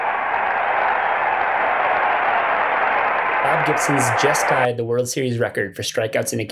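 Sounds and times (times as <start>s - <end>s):
huge stadium crowd roaring and cheering: 0.0s - 4.8s
speech: 3.6s - 6.4s.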